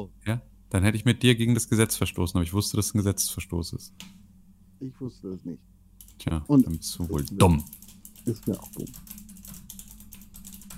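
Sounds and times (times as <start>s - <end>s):
speech: 0.0s - 4.2s, 4.8s - 9.2s
low hum: 0.0s - 10.7s
typing on a computer keyboard: 6.0s - 10.7s.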